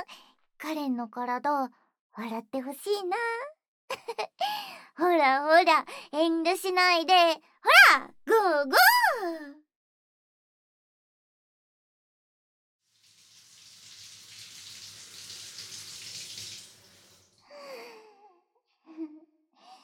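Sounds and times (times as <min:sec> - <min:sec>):
speech: 0:00.1 - 0:09.6
shower water running: 0:12.9 - 0:17.4.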